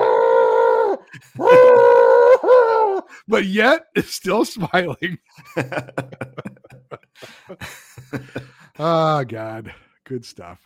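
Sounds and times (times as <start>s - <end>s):
man with a broken ankle howling in pain from under a mat: 0.0s - 3.1s
laughter: 1.1s - 1.8s, 4.6s - 8.9s
speech: 3.3s - 6.6s, 7.2s - 10.6s.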